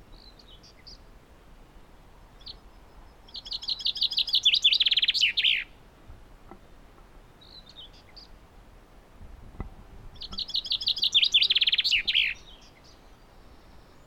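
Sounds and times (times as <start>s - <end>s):
common chaffinch Fringilla coelebs singing: 0.0s - 1.1s, 2.3s - 5.8s, 7.4s - 8.4s, 10.2s - 14.0s.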